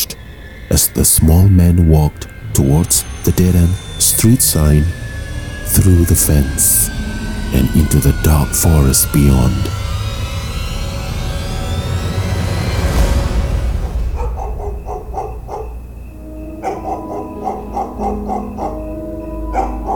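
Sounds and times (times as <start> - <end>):
low rumbling noise: 0.0 - 19.9
speech: 0.7 - 5.0, 5.7 - 9.8
stray dogs barking excitedly: 13.8 - 19.9.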